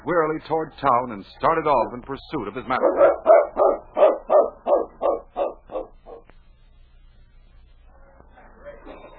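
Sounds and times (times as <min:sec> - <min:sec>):
speech: 0:00.0 - 0:03.8
dog barking: 0:02.8 - 0:06.3.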